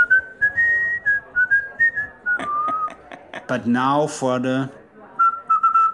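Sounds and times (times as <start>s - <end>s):
person whistling a short wavering tune: 0.0s - 2.9s, 5.2s - 5.9s
laughter: 2.0s - 3.9s
speech: 3.5s - 4.8s.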